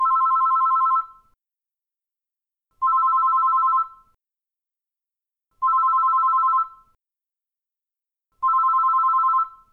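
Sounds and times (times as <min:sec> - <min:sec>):
pushbutton telephone ringing: 0:00.0 - 0:01.1, 0:02.8 - 0:04.0, 0:05.6 - 0:06.8, 0:08.4 - 0:09.6.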